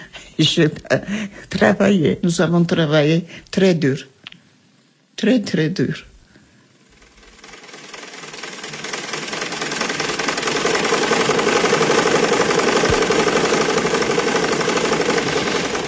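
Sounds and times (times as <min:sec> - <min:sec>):
speech: 0:00.4 - 0:04.1, 0:05.2 - 0:06.1
sewing machine running: 0:06.7 - 0:15.8.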